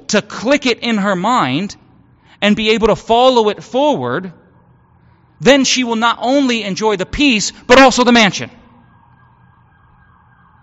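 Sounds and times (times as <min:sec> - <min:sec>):
speech: 0:00.1 - 0:01.8, 0:02.4 - 0:04.4, 0:05.4 - 0:08.6
emergency vehicle siren: 0:03.6 - 0:07.0, 0:07.7 - 0:10.6.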